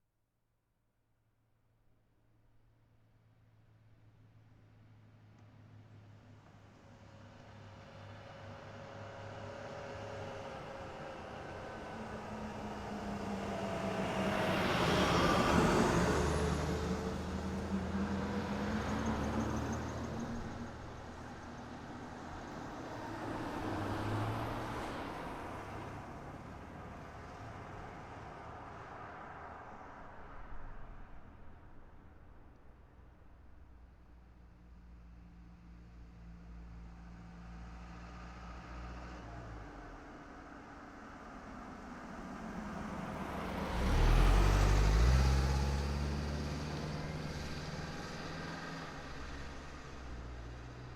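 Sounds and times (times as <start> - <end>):
car driving by: 12.3 - 31.1, 37.8 - 50.9.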